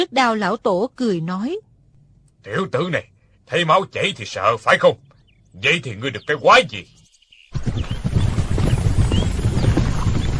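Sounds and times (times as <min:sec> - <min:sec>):
speech: 0:00.0 - 0:01.7, 0:02.4 - 0:07.9
hoofbeats of many horses ridden at speed: 0:05.6 - 0:06.8, 0:07.5 - 0:10.3.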